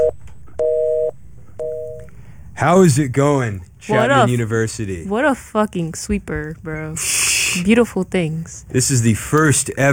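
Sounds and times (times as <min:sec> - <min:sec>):
telephone busy signal after a phone is hung up: 0:00.0 - 0:02.1
speech: 0:02.6 - 0:09.9.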